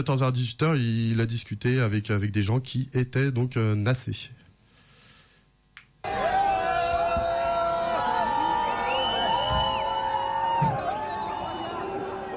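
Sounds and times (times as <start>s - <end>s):
speech: 0.0s - 4.4s
large crowd cheering and doing a wave: 6.0s - 12.3s.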